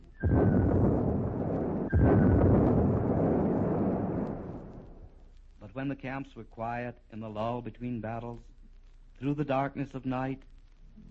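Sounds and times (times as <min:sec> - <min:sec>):
cannon booms during the assault of Fort Wagner: 0:00.0 - 0:05.2
speech: 0:05.8 - 0:08.6, 0:09.2 - 0:11.0.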